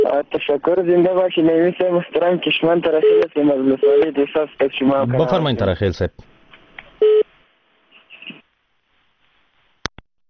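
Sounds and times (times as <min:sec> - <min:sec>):
faint sound on the telephone line: 0:00.0 - 0:05.4
speech: 0:00.2 - 0:06.3
telephone tone as a call is cut off: 0:07.0 - 0:07.3.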